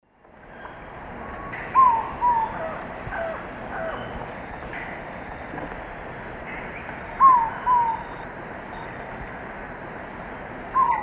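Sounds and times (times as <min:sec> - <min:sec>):
female Thamnophilus praecox calling in South American eastern lowlands: 0:00.5 - 0:09.0, 0:10.7 - 0:11.0.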